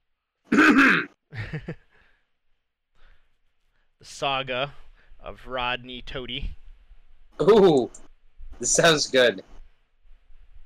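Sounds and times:
person clearing throat: 0.5 - 1.2
speech: 1.5 - 1.8, 4.2 - 6.6, 7.4 - 9.5
faint breath: 1.9 - 2.4, 3.0 - 4.0, 4.8 - 5.2.

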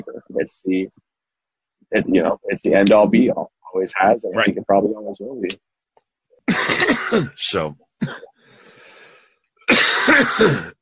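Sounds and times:
speech: 0.0 - 1.0, 1.9 - 5.7, 6.5 - 8.6, 9.7 - 10.8
man coughing: 6.5 - 8.3, 9.7 - 10.8.

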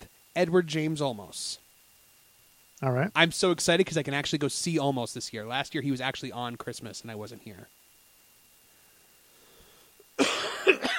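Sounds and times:
speech: 0.4 - 1.6, 2.8 - 7.8
person coughing harshly into a rasping throat sound: 10.2 - 10.9.

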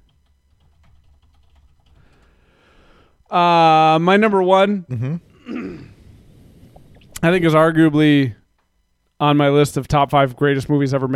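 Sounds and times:
computer keyboard typing: 0.0 - 2.4
speech: 3.3 - 5.3, 7.2 - 8.4, 9.2 - 11.1.

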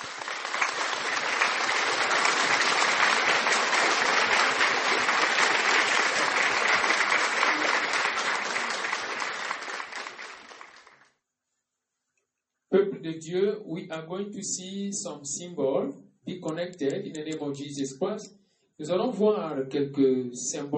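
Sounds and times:
audience applauding: 0.0 - 11.1
speech: 13.1 - 20.7.

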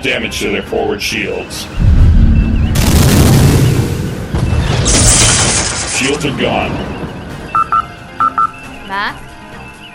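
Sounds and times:
speech: 0.0 - 2.0, 6.0 - 7.0, 8.9 - 9.2
photon torpedoes fired from a starship rumbling blast effect: 1.8 - 5.4.

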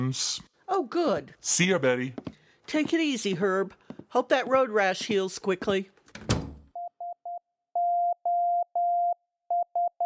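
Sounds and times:
speech: 0.0 - 6.0
Morse code SOS beeping signal: 6.8 - 10.0.

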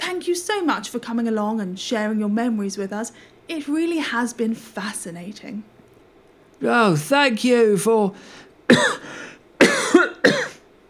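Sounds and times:
speech: 0.2 - 5.7, 6.6 - 9.3
person coughing to clear throat: 8.7 - 10.6.

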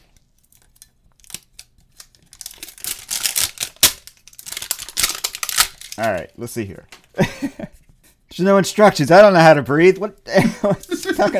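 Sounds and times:
plastic packaging being cut open with a knife: 0.0 - 6.2, 10.8 - 11.3
speech: 6.0 - 7.8, 8.4 - 11.3
laughter: 10.3 - 11.3.

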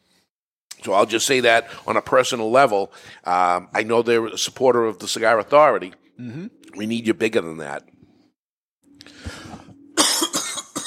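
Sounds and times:
speech: 0.8 - 8.0
loud coughing fit with harsh hacking coughs: 10.0 - 10.8.

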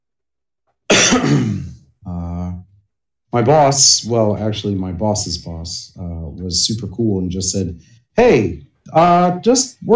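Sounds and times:
harsh chesty cough: 0.9 - 1.9
person clearing throat: 0.9 - 1.9
speech: 3.3 - 9.9.

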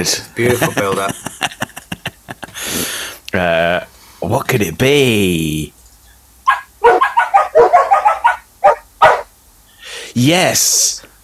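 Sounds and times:
speech: 0.0 - 1.6, 3.3 - 5.8, 10.2 - 11.0
laughter: 0.0 - 2.9
dogs barking: 6.4 - 9.4.

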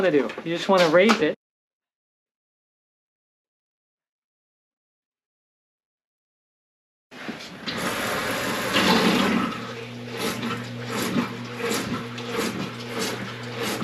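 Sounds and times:
speech: 0.0 - 1.4
sump pump motor humming: 7.2 - 13.8
water churning and gurgling as it drains: 7.6 - 13.8.

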